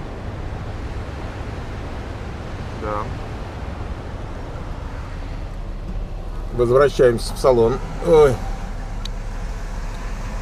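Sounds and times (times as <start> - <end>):
idling and slow-moving cars in a traffic jam: 0.0 - 10.4
speech: 2.8 - 3.3, 6.5 - 8.5.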